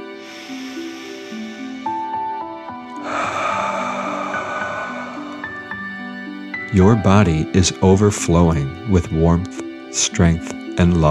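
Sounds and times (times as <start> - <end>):
soft gentle melody: 0.0 - 11.0
deep breath in through the nose and out through the mouth: 0.1 - 2.0, 3.0 - 6.4
speech: 6.7 - 11.0.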